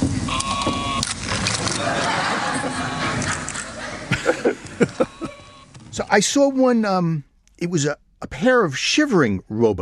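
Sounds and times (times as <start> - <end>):
toy wooden box making mechanical sheep bleats: 0.3 - 1.0, 4.9 - 5.8
laughter: 1.6 - 5.6
speech: 6.0 - 9.8.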